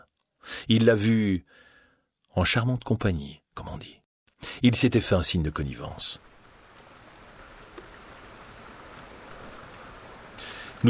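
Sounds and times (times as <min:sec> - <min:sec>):
speech: 0:00.6 - 0:01.7, 0:02.3 - 0:06.3
steady rain falling from a low grey sky: 0:04.8 - 0:10.8.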